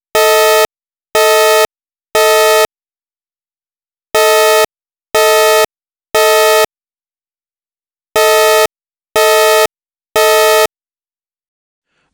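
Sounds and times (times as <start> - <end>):
evacuation alarm tone with voice announcement: 0.2 - 2.7, 4.2 - 6.7, 8.2 - 10.7.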